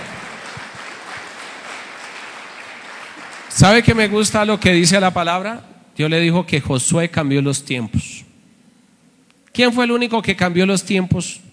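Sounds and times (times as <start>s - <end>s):
church audience clapping during a sermon: 0.0s - 4.6s
speech: 3.6s - 8.2s, 9.6s - 11.5s.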